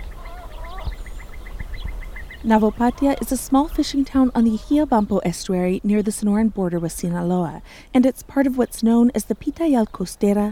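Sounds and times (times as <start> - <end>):
birds giving rising whistled calls at dusk on an estuary: 0.0 - 3.4
low rumble: 0.0 - 10.5
warblers, willets and other birds chirping at dusk on an estuary field station: 0.0 - 10.5
speech: 2.4 - 10.5.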